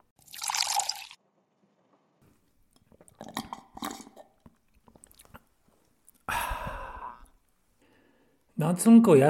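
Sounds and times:
soft gulping swallows of mineral water: 2.7 - 7.4
breathy sigh: 6.3 - 8.4
long satisfied exhale: 6.3 - 8.4
speech: 8.6 - 9.2.

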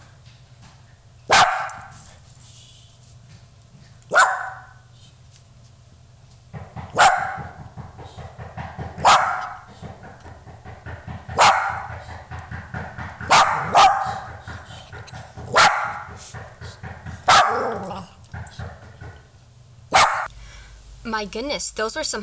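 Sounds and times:
dog barking: 1.3 - 2.2, 3.8 - 5.1, 6.6 - 19.2, 19.9 - 20.3
speech: 21.1 - 22.2.

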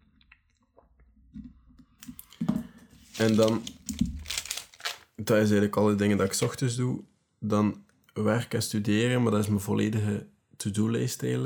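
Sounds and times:
light paper rustling: 2.1 - 5.2
speech: 3.2 - 3.8, 5.3 - 11.4.

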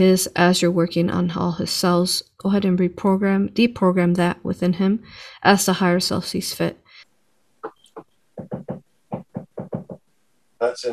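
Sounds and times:
speech: 0.0 - 6.8, 10.6 - 10.9
woodpecker drumming on wood: 7.6 - 10.1.

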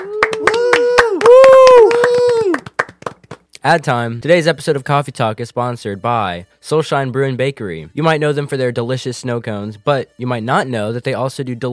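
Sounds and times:
crowd whooping and hollering as a sound effect: 0.0 - 2.6
scattered hand claps: 0.0 - 3.6
speech: 3.6 - 11.7.

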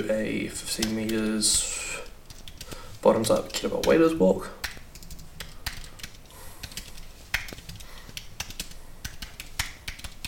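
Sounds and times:
speech: 0.0 - 2.0, 3.0 - 4.6
typing on a computer keyboard: 0.8 - 1.4, 2.3 - 4.0, 4.6 - 10.2.

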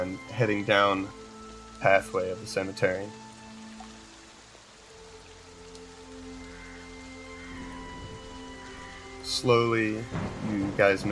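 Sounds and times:
speech: 0.0 - 1.2, 1.8 - 3.2, 9.4 - 11.1
steady rain: 0.0 - 11.1.

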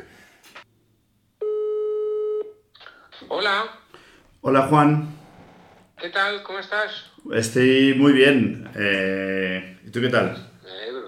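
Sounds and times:
electronic telephone ringback tone: 1.4 - 2.5
speech: 3.3 - 3.8, 4.4 - 5.2, 6.0 - 10.5.

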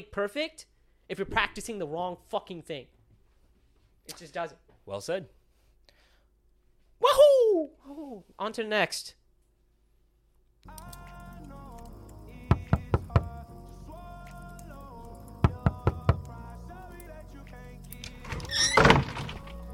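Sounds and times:
speech: 0.0 - 3.0, 4.0 - 5.4, 7.0 - 9.2
sharp knocks on a door: 12.5 - 13.3, 15.4 - 16.3.

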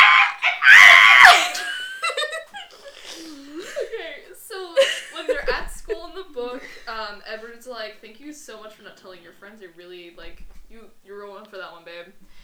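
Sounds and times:
person letting out a loud shrill imitation scream: 0.0 - 2.0
laughter: 0.0 - 7.4
speech: 7.4 - 12.2.

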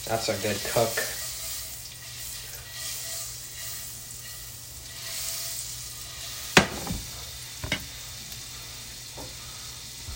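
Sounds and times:
speech: 0.0 - 1.2
butter melting and green onions sizzling in a pan: 0.0 - 10.1
metallic clank: 6.6 - 7.9.

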